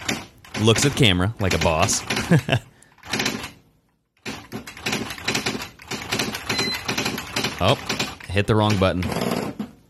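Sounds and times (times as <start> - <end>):
mechanical typewriter keystrokes clattering: 0.0 - 2.3, 3.0 - 3.6, 4.2 - 8.8
speech: 0.6 - 2.7, 7.6 - 9.4
faint bell-like typewriter ding: 6.5 - 7.0.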